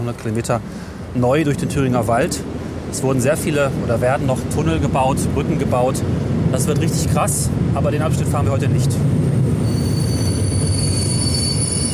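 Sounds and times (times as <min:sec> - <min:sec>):
Mitteldeutsche Regiobahn regional train pulling into a station: 0:00.0 - 0:11.9
speech: 0:00.1 - 0:09.4
regional train wheels squealing: 0:09.5 - 0:11.9.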